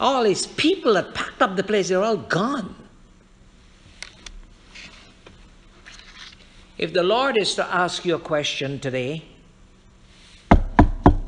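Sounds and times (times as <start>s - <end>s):
speech: 0.0s - 2.8s, 6.8s - 9.3s
firm knocks on a wooden door: 10.5s - 11.2s.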